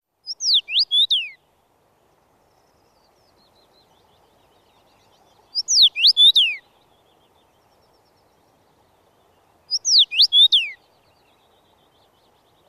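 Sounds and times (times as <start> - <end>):
Common Rosefinch singing a short clear whistled phrase: 0.2 - 1.4, 5.5 - 6.6, 9.7 - 10.8.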